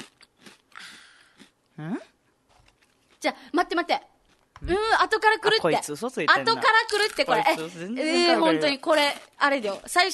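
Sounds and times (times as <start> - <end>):
biting and chewing spicy food seasoned with chili powder: 0.0 - 1.6, 2.5 - 3.3, 6.7 - 10.1
speech: 1.8 - 2.1, 3.2 - 10.1.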